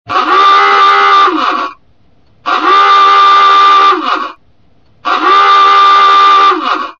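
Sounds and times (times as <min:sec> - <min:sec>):
awooga horn: 0:00.1 - 0:01.8, 0:02.5 - 0:04.4, 0:05.0 - 0:06.9.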